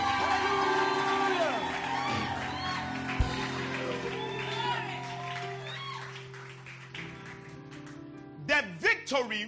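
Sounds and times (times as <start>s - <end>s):
crowd shouting and cheering with scattered whoops: 0.0s - 6.4s
crowd clapping: 0.0s - 8.2s
speech: 9.1s - 9.4s.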